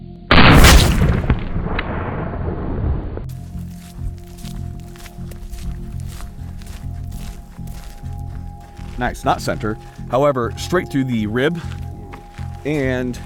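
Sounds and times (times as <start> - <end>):
gunshot fired through the chest of a ballistic test target: 0.3 - 2.4
speech: 9.0 - 11.8, 12.6 - 13.2.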